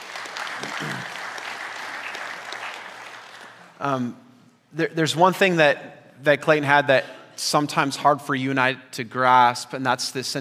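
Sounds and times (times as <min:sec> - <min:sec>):
room full of people applauding: 0:00.0 - 0:03.8
speech: 0:00.8 - 0:01.2, 0:03.8 - 0:10.3.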